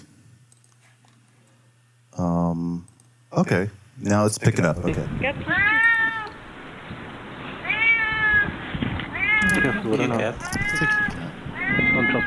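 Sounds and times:
speech: 2.2s - 6.1s, 9.5s - 12.2s
cat meowing: 5.5s - 6.4s, 7.6s - 9.9s, 10.6s - 12.2s.

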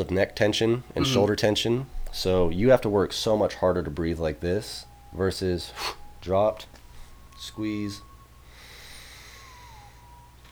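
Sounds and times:
speech: 0.0s - 6.8s, 7.4s - 8.1s
deep diaphragmatic breath in: 8.4s - 10.2s.

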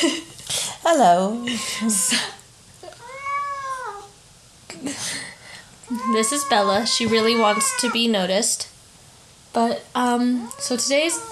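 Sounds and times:
speech: 0.8s - 2.4s, 5.9s - 8.7s, 9.5s - 11.3s
cat meowing while being held: 3.0s - 4.1s, 5.9s - 8.0s, 10.4s - 11.3s.

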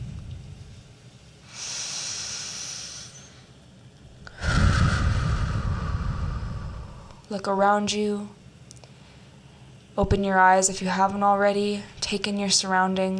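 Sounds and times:
deep breathing during a guided relaxation exercise: 1.4s - 3.6s, 4.2s - 7.3s
speech: 7.3s - 8.4s, 10.0s - 13.1s.

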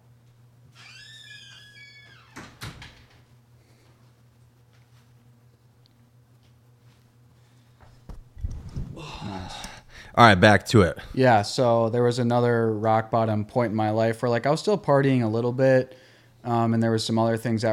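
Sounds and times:
door creaking on its hinges: 0.7s - 3.2s
door closing with a solid thud: 2.0s - 3.2s
low steady hum: 3.0s - 17.7s
speech: 9.5s - 17.7s.

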